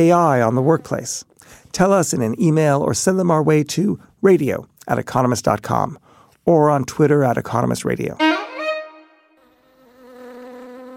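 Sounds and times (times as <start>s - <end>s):
speech: 0.0s - 8.4s
angry bee buzzing: 9.4s - 10.9s.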